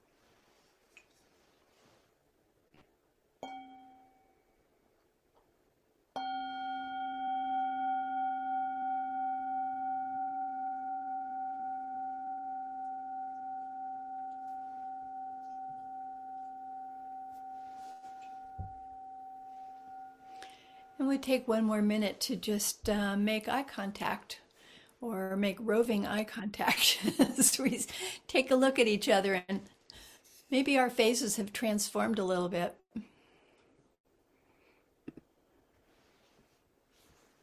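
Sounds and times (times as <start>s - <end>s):
meditation bell ringing: 3.4s - 4.6s, 6.2s - 21.5s
soft tap on meditation bell: 18.2s - 18.9s
speech: 21.1s - 24.4s, 25.0s - 29.7s, 30.5s - 32.8s.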